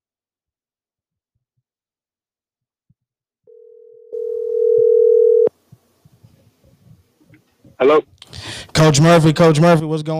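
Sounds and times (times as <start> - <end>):
outgoing phone call ringing tone: 3.5 - 5.5
speech: 7.8 - 10.1.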